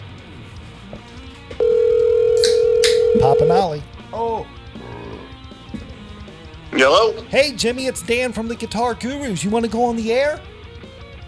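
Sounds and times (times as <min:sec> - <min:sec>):
phone line ringback tone on an outgoing call from a studio phone system: 0:01.6 - 0:03.8
speech: 0:03.4 - 0:04.6, 0:06.8 - 0:10.5.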